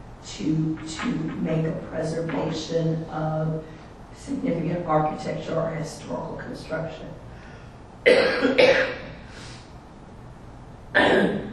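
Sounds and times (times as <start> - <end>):
speech: 0.3 - 7.3, 8.0 - 9.0
harsh coughs: 8.1 - 9.1, 11.0 - 11.5.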